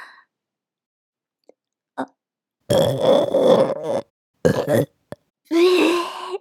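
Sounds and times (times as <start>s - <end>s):
long loud rumbling burp: 2.7s - 5.0s
second shorter belch: 2.7s - 5.0s
speech: 2.9s - 3.4s, 4.7s - 5.0s.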